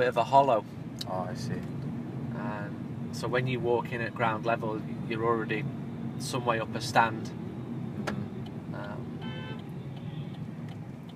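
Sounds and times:
speech: 0:00.0 - 0:01.8, 0:02.4 - 0:07.4
street traffic rumble near a stadium: 0:00.0 - 0:11.1
car horn honking in traffic near a stadium: 0:09.1 - 0:10.5.

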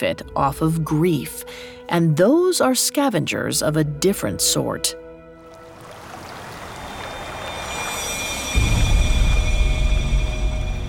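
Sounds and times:
speech: 0:00.0 - 0:05.0
flowing river water: 0:05.5 - 0:08.6
faint sustained tones: 0:06.6 - 0:10.8.

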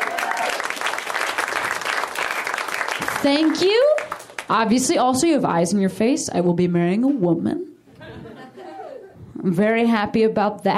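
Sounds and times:
faint cheers: 0:00.0 - 0:00.8
room full of people clapping: 0:00.0 - 0:04.6
speech: 0:03.2 - 0:07.7, 0:09.4 - 0:10.7
laughter: 0:07.9 - 0:09.2.

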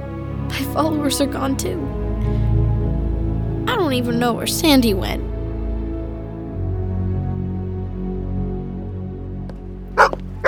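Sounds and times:
steady droning musical backdrop: 0:00.0 - 0:10.4
speech: 0:00.6 - 0:02.0, 0:03.9 - 0:05.3
dog on a walk barking: 0:10.0 - 0:10.4.

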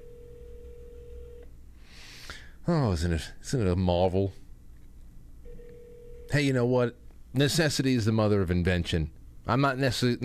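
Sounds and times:
Skype call electronic ringing tone: 0:00.0 - 0:01.5, 0:05.4 - 0:06.5
low hum: 0:00.0 - 0:10.2
speech: 0:02.7 - 0:04.4, 0:06.3 - 0:10.2.

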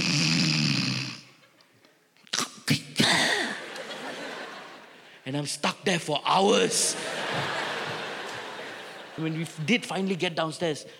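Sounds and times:
man imitating his father's snoring during a comedy routine: 0:00.0 - 0:01.3
laughter: 0:03.4 - 0:05.2, 0:06.6 - 0:10.5
speech: 0:05.3 - 0:07.6, 0:09.2 - 0:10.9.

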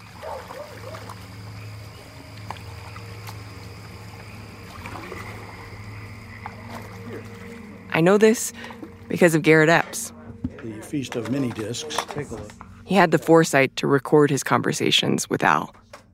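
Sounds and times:
faint frog-like croaks: 0:00.0 - 0:10.5
oars dipping and splashing in river water: 0:00.0 - 0:12.7
steady low outdoor hum: 0:00.0 - 0:16.1
speech: 0:08.0 - 0:10.2, 0:10.9 - 0:15.8.

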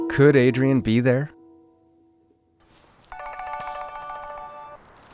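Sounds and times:
speech: 0:00.2 - 0:01.4
cell phone ringtone with bright electronic melody: 0:03.1 - 0:04.9.

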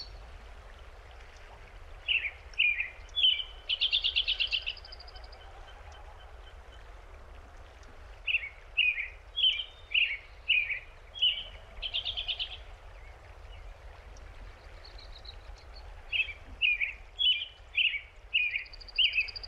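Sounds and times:
American robin song in Big Thompson Canyon, Colorado, USA: 0:02.0 - 0:05.1, 0:08.2 - 0:12.6, 0:16.1 - 0:19.4.

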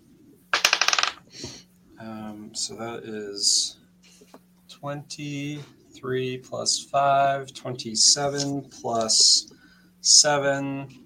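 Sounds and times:
dice rolling on a hard tabletop: 0:00.5 - 0:01.3
speech: 0:01.4 - 0:03.8, 0:04.8 - 0:11.0.

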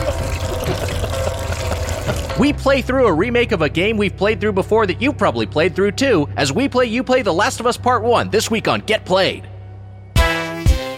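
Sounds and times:
gasoline pouring into a tank: 0:00.0 - 0:02.4
low steady hum: 0:00.0 - 0:10.2
speech: 0:02.4 - 0:09.5.

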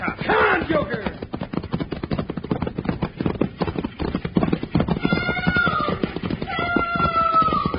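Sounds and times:
runaway stagecoach team of horses galloping hard: 0:00.0 - 0:07.7.

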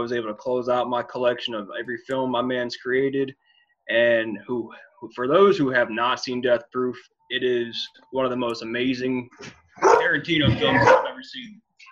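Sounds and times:
speech: 0:00.0 - 0:11.9
dog barking excitedly: 0:09.8 - 0:10.1, 0:10.8 - 0:11.2.

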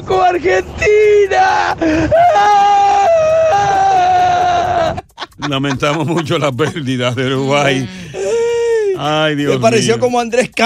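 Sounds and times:
speech: 0:00.1 - 0:02.8, 0:05.4 - 0:08.1, 0:09.0 - 0:10.6
exaggerated crying and whimpering in a high voice: 0:01.2 - 0:06.0, 0:07.2 - 0:10.0
laughter: 0:04.3 - 0:10.0.

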